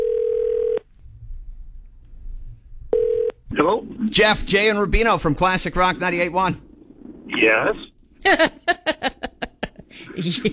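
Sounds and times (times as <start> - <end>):
telephone dial tone as a phone call is placed: 0.0 - 0.8, 2.9 - 3.4
faint low noise: 0.0 - 10.5
speech: 3.6 - 6.7, 7.4 - 8.6, 10.2 - 10.5
laughter: 8.2 - 10.5.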